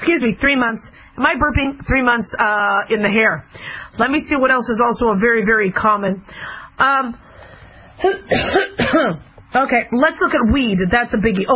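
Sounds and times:
speech: 0.0s - 7.3s, 8.0s - 11.5s
person coughing: 8.0s - 9.3s.

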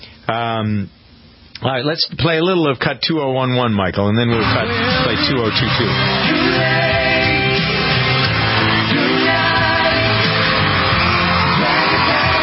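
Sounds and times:
speech: 0.3s - 1.0s, 1.6s - 7.1s
busy musical recording: 4.2s - 12.4s
crowd yelling and whooping: 4.4s - 12.4s.

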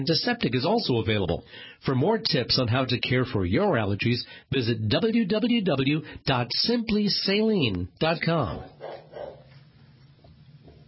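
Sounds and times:
speech: 0.0s - 8.8s
dog yipping faintly and muffled: 8.6s - 9.5s
dog barking: 8.6s - 9.6s.

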